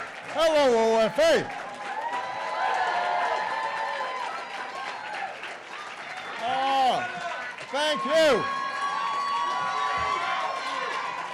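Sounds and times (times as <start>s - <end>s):
speech: 0.4s - 1.6s, 7.7s - 8.6s
excited audience cheering and shouting: 0.5s - 11.3s
whoops: 1.8s - 5.4s, 8.0s - 11.3s.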